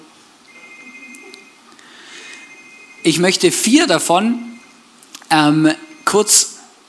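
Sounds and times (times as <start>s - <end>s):
telephone ringing with a thin steady electronic tone: 0.5s - 4.8s, 5.5s - 6.4s
speech: 3.1s - 4.5s, 5.3s - 6.5s.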